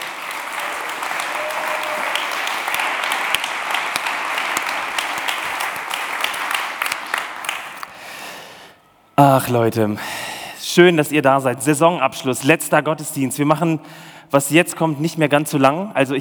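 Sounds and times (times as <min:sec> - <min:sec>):
crowd applauding: 0:00.0 - 0:08.4
speech: 0:09.2 - 0:10.2, 0:10.8 - 0:16.1.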